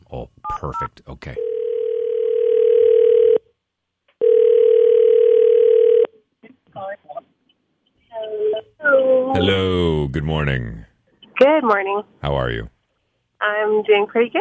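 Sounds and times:
speech: 0:00.6 - 0:01.5, 0:09.4 - 0:10.8, 0:11.6 - 0:12.7, 0:13.4 - 0:14.3
telephone ringing out on an outgoing call: 0:01.4 - 0:03.5, 0:04.2 - 0:06.1.

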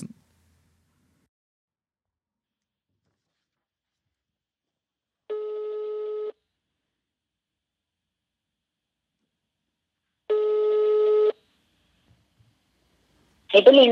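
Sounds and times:
electronic telephone ringback tones: 0:05.3 - 0:06.4, 0:10.3 - 0:11.4
speech: 0:13.5 - 0:13.8.

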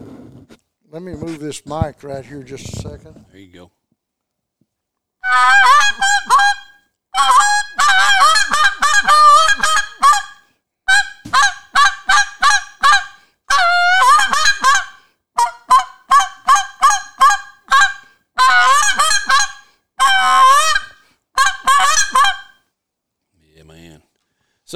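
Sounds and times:
speech: 0:00.9 - 0:03.8, 0:05.3 - 0:06.4
goose call blown imitating a honking goose: 0:05.2 - 0:22.6.

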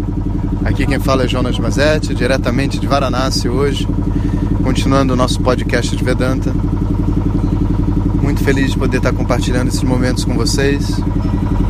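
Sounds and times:
small rented boat engine chugging past the ghats in Varanasi: 0:00.0 - 0:11.6
speech: 0:00.6 - 0:06.9, 0:08.3 - 0:11.6.

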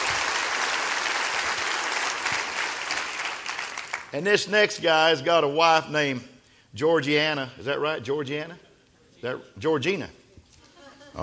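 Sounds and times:
audience applause: 0:00.0 - 0:04.1
speech: 0:04.1 - 0:08.6, 0:09.2 - 0:10.2
laughter: 0:10.5 - 0:11.2.

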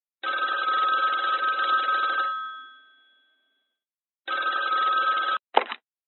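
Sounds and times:
telephone ringing with a shrill electronic trill: 0:00.2 - 0:03.6, 0:04.2 - 0:05.4.

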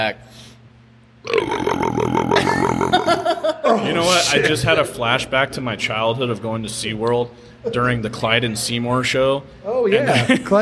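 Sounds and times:
speech: 0:00.0 - 0:00.5, 0:01.2 - 0:10.6
loud deep drawn-out burp: 0:01.2 - 0:03.4
laughter: 0:02.4 - 0:05.0, 0:10.0 - 0:10.6.

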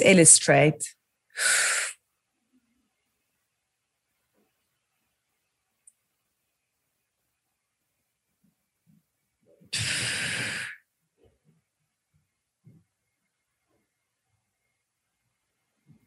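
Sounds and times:
speech: 0:00.0 - 0:01.8
quick loud breath drawn in: 0:09.8 - 0:10.9.

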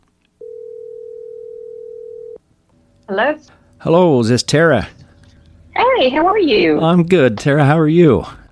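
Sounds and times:
telephone dial tone while placing a call: 0:00.4 - 0:02.4
speech: 0:03.1 - 0:05.0, 0:06.0 - 0:08.4.

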